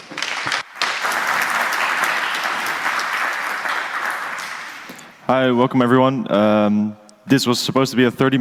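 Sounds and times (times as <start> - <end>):
audience applause: 0.0 - 5.1
speech: 5.3 - 8.4.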